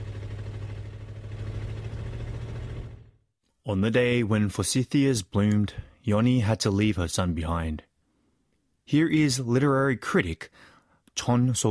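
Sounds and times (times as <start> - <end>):
truck engine rumbling while driving away: 0.0 - 3.2
speech: 3.7 - 7.9, 8.9 - 11.6.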